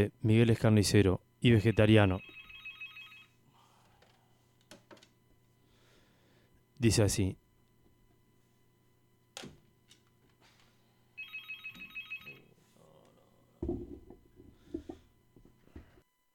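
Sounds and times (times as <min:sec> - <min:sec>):
speech: 0:00.0 - 0:02.4, 0:06.8 - 0:07.4
telephone at a radio station ringing with pulsing electronic trills: 0:01.5 - 0:03.4, 0:11.2 - 0:12.6
louder rustling and knocking noises: 0:13.6 - 0:16.0.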